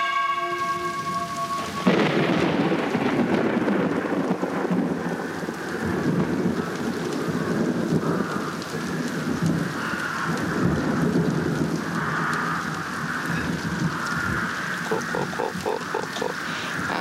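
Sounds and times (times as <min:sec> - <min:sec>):
heavy rain pouring down: 0:00.0 - 0:17.0
deep rolling thunder: 0:01.0 - 0:17.0
laughter: 0:14.8 - 0:17.0.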